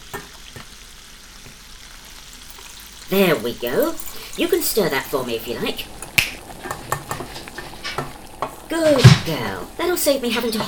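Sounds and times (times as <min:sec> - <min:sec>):
tomato sauce sizzling in a hot pan: 0:00.0 - 0:10.6
speech: 0:03.1 - 0:06.0, 0:08.7 - 0:10.6.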